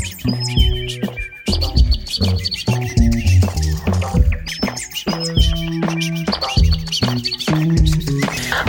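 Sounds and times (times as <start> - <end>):
bird chirps and tweets: 0.0 - 8.6
dense loud music with steady low-end thumps: 0.0 - 8.6.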